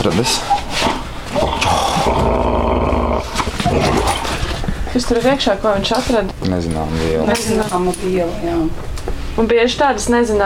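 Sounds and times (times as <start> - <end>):
speech: 0.0 - 0.9, 5.0 - 10.4
Dutch shepherd service dog growling and snarling: 0.8 - 4.7
shuffling: 3.3 - 9.4.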